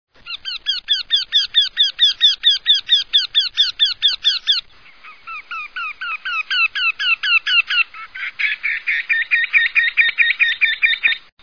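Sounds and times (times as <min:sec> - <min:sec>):
wryneck singing: 0:00.2 - 0:11.3.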